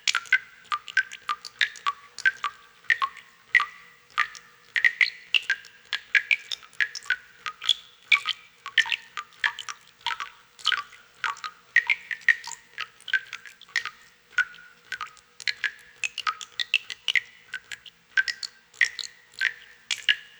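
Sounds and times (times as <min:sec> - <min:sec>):
cave pool drips: 0:00.0 - 0:20.3.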